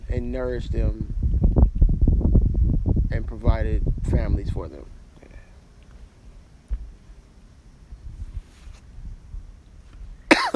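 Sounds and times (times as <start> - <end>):
quiet low rumble: 0.0 - 10.5
speech: 0.1 - 1.1, 3.1 - 4.9
sudden forceful cough: 10.3 - 10.5.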